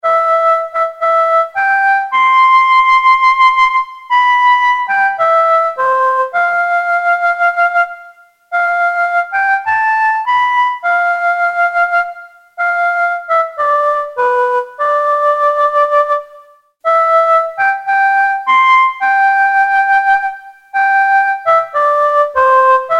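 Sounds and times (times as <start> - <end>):
flute ringtone: 0.0 - 22.9.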